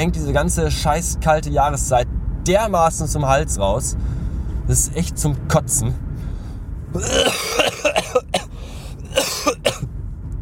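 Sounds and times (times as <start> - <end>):
speech: 0.0 - 6.1, 6.9 - 7.6
person coughing from a cold: 7.0 - 9.9.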